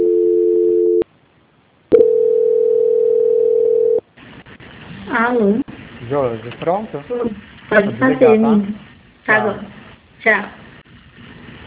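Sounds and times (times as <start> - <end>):
telephone tone during a call transfer: 0.0 - 1.0, 1.9 - 4.0
telephone line noise burst: 4.0 - 11.6
speech: 5.3 - 10.6.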